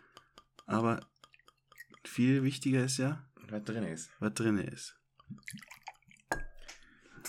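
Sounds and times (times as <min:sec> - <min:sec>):
speech: 0:00.7 - 0:01.1, 0:02.1 - 0:05.7
liquor glugging and splashing into a glass: 0:01.2 - 0:02.1, 0:05.3 - 0:06.6.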